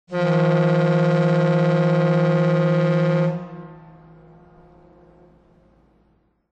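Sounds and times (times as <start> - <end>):
tugboat: 0.1 - 6.5.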